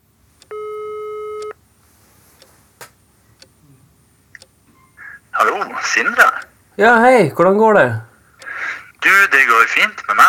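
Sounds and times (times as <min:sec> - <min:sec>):
telephone ringback tone during outgoing call: 0:00.5 - 0:01.6
speech: 0:05.5 - 0:08.1, 0:09.2 - 0:10.2.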